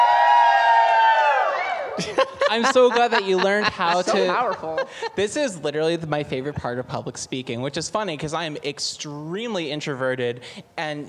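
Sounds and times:
audience cheering: 0:00.0 - 0:04.8
laughter: 0:01.8 - 0:05.6
speech: 0:02.0 - 0:11.0.

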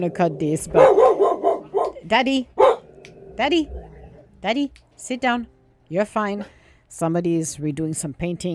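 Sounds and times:
speech: 0:00.0 - 0:01.1, 0:02.0 - 0:02.5, 0:03.4 - 0:03.8, 0:04.4 - 0:08.5
dog barking: 0:00.7 - 0:02.0, 0:02.6 - 0:02.9.

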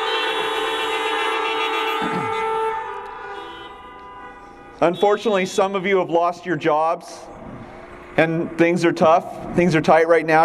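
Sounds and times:
loud sustained car horns honking: 0:00.0 - 0:09.8
speech: 0:04.8 - 0:07.3, 0:08.2 - 0:10.4.

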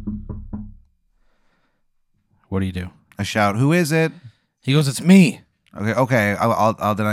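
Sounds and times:
knocking on a wooden door: 0:00.0 - 0:00.8
speech: 0:02.5 - 0:07.1.

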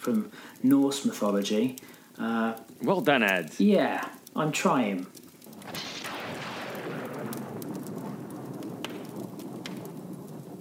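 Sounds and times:
speech: 0:00.0 - 0:05.8
sizzling lightning strike crack sound effect: 0:05.4 - 0:10.5
rolling thunder rumble sound effect: 0:05.5 - 0:10.5.

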